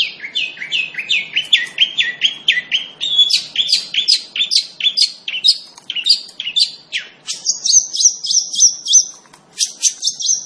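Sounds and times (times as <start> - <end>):
Long-tailed shrike singing lively chattering notes: 0.0 - 10.4.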